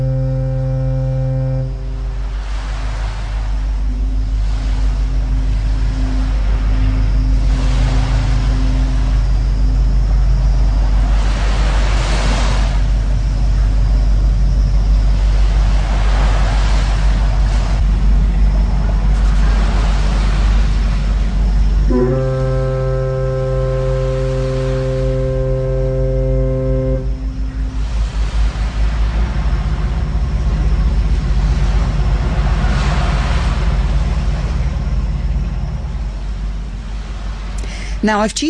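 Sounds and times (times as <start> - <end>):
second foghorn tone: 0.0 - 2.6, 21.9 - 28.0
deep foghorn blast on a foggy shore: 0.0 - 9.2, 19.4 - 37.6
waves washing against a shore: 0.0 - 13.8, 14.9 - 38.4
speech: 38.0 - 38.4.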